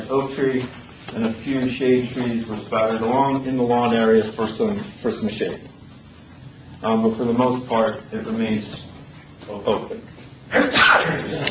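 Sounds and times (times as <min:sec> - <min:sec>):
speech: 0:00.1 - 0:05.8, 0:06.8 - 0:08.9, 0:09.5 - 0:11.4
person sneezing: 0:10.5 - 0:11.4.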